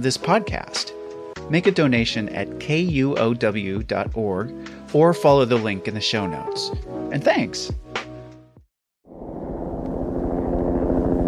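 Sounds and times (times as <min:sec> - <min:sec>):
speech: 0:00.0 - 0:07.8
helicopter engine and rotor starting up: 0:09.6 - 0:11.2.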